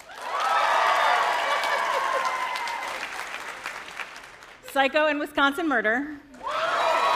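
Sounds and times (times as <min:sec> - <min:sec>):
scattered cheers: 0:00.0 - 0:03.1, 0:06.4 - 0:07.1
crowd applauding as a vote by applause: 0:00.0 - 0:04.7, 0:06.4 - 0:07.1
speech: 0:04.8 - 0:06.2.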